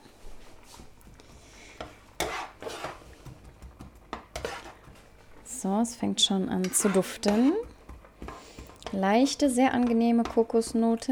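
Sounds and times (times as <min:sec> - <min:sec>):
onions sizzling in a frying pan: 0:00.9 - 0:11.1
utensil scraping and clattering against a frying pan: 0:01.3 - 0:05.3, 0:06.5 - 0:11.1
speech: 0:05.6 - 0:07.7, 0:08.9 - 0:11.1.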